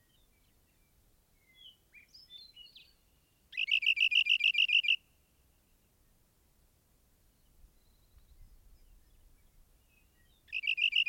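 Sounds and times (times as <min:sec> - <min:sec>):
rock wren song: 0:00.0 - 0:06.2, 0:07.2 - 0:11.0.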